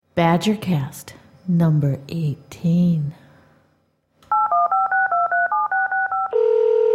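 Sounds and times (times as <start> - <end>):
speech: 0.2 - 3.2
touch-tone keypad beeps: 4.3 - 6.4
steady continuous phone tone: 4.3 - 6.9.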